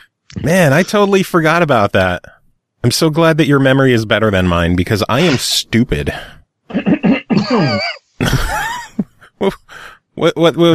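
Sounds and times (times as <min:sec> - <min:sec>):
speech: 0:00.4 - 0:08.7, 0:09.4 - 0:10.7
person clearing throat loudly and at length: 0:06.7 - 0:08.6.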